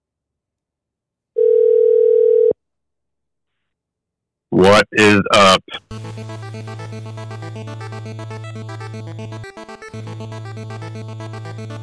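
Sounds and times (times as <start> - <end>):
phone dial tone while placing a call: 1.4 - 2.6
speech: 4.6 - 7.8.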